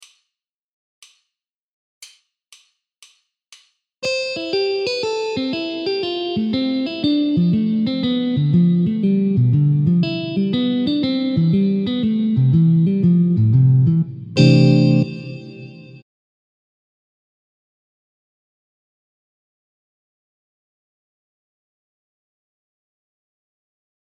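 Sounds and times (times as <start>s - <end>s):
jazz guitar arpeggios in C major: 4.0s - 15.9s.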